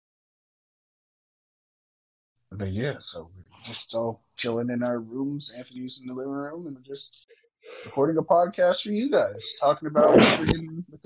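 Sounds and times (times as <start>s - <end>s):
speech: 2.5s - 11.0s
loud sneeze: 10.0s - 10.6s.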